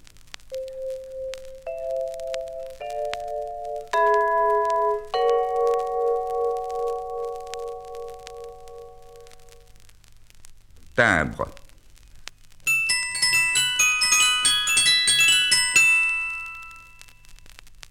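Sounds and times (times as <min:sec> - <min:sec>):
vibraphone playing sustained ringing notes: 0:00.6 - 0:09.5, 0:12.7 - 0:17.1
speech: 0:11.0 - 0:11.6.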